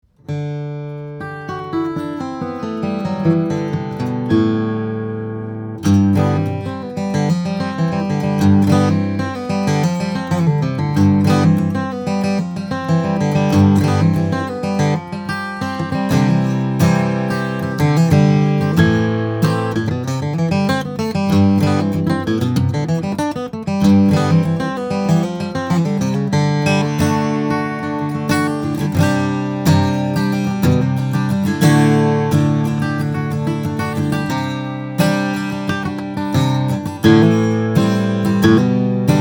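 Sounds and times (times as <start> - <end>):
1967 Gibson J-45 mahogany and spruce steel string flattop guitar playing: 0.0 - 39.2.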